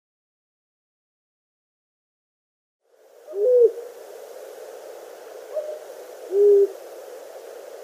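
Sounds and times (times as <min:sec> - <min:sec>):
male long-eared owl hooting display calls: 0:03.3 - 0:03.9, 0:05.4 - 0:07.8.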